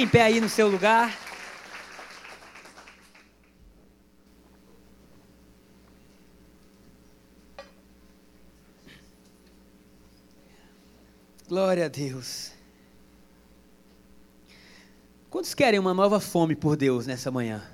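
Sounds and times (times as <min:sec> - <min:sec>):
speech: 0:00.0 - 0:01.2, 0:11.5 - 0:12.6, 0:15.3 - 0:17.7
crowd applauding: 0:00.0 - 0:03.6
low steady hum: 0:00.0 - 0:17.7.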